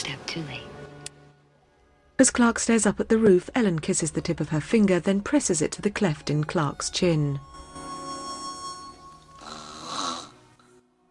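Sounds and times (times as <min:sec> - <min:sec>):
speech: 0:00.1 - 0:00.6, 0:02.2 - 0:07.5
person snoring in bed: 0:09.4 - 0:10.8.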